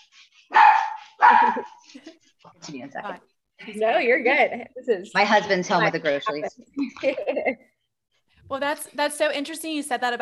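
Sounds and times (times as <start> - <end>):
dog barking in a home: 0.5 - 1.8
speech: 1.6 - 7.7, 8.5 - 10.1.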